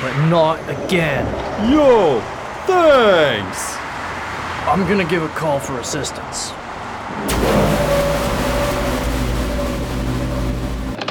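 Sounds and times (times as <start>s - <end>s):
speech: 0.2s - 3.8s, 4.7s - 7.8s
car engine approaching and droning: 7.3s - 11.0s.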